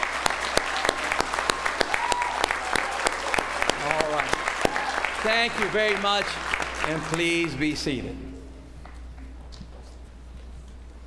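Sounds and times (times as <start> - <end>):
sharp individual claps: 0.0 - 7.8
steady applause from a crowd: 0.0 - 8.2
speech: 5.2 - 8.3.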